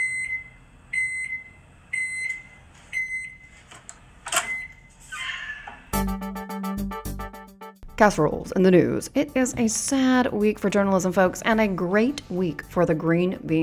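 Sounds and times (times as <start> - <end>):
microwave oven beeping: 0.0 - 6.0
speech: 8.0 - 13.6.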